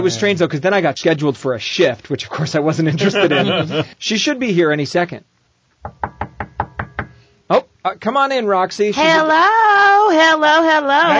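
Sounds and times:
speech: 0.0 - 6.0, 7.5 - 11.1
laughter: 2.8 - 3.9
knocking on a wooden door: 5.8 - 7.2.

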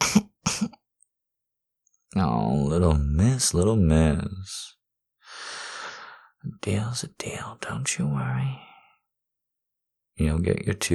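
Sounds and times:
soft coughs: 0.0 - 0.8
speech: 2.1 - 4.8, 6.4 - 8.7, 10.2 - 10.9.

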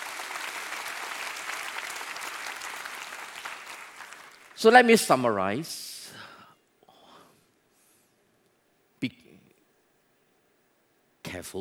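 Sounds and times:
room full of people applauding: 0.0 - 4.6
speech: 4.6 - 5.9, 9.0 - 9.2, 11.4 - 11.5.

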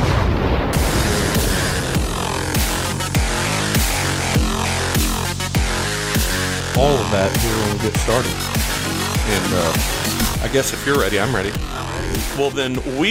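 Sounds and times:
explosion blast in a song: 0.0 - 4.6
deep booming hits: 0.0 - 12.5
dense loud music: 0.1 - 13.0
speech: 6.8 - 8.7, 9.3 - 13.0.

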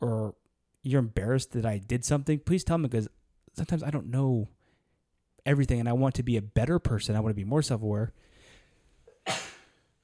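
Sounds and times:
speech: 0.0 - 4.6, 5.4 - 8.3
intake of breath: 8.2 - 10.0
sneeze: 9.1 - 9.8.

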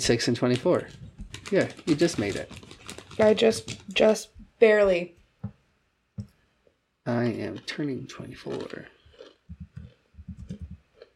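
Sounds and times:
speech: 0.0 - 2.6, 3.2 - 5.2, 7.1 - 9.6
chips being chewed: 0.5 - 4.0, 8.4 - 11.1.

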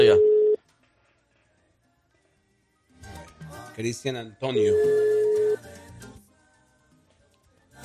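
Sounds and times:
phone ringback tone on an outgoing call: 0.0 - 0.6, 4.6 - 5.6
speech: 3.8 - 5.2.

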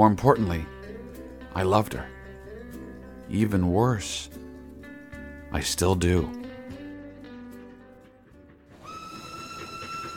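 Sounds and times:
speech: 0.0 - 0.7, 1.6 - 2.2, 3.3 - 4.4, 5.5 - 6.4
train carriage rolling along the rails with a low rumble: 7.7 - 10.1
sustained whistle-like tones: 8.7 - 10.1.

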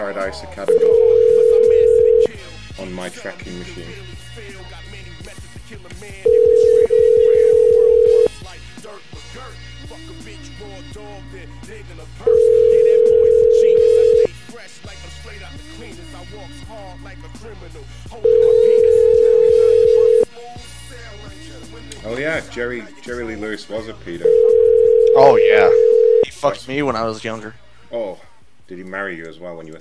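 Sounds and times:
speech: 0.1 - 1.2, 2.8 - 5.1, 8.9 - 12.8, 14.6 - 18.8, 22.4 - 24.6, 25.2 - 29.7
telephone line tone while calling back: 0.7 - 2.3, 6.3 - 8.3, 12.3 - 14.3, 18.2 - 20.3, 24.2 - 26.3.

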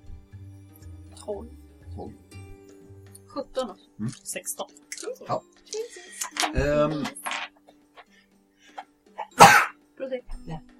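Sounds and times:
speech: 1.2 - 2.4, 3.4 - 7.2
short murmured vocal sounds: 4.0 - 4.3, 4.9 - 7.2
person sneezing: 9.2 - 9.7.

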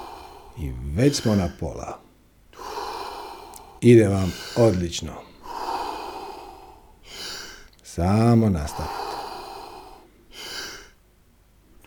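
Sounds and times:
deep slow breathing in a guided relaxation exercise: 0.0 - 7.8, 8.6 - 11.0
speech: 0.6 - 2.0, 3.8 - 5.3, 8.0 - 9.0.

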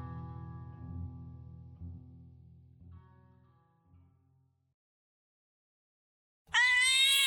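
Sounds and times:
black cat meowing: 6.6 - 7.2.

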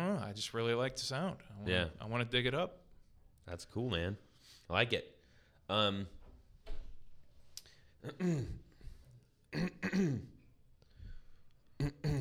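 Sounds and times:
speech: 0.3 - 2.8, 3.4 - 6.2, 8.0 - 8.6, 9.5 - 10.3, 11.8 - 12.1
person clearing throat to dislodge something stuck: 8.0 - 8.7, 9.5 - 10.5, 11.8 - 12.1.

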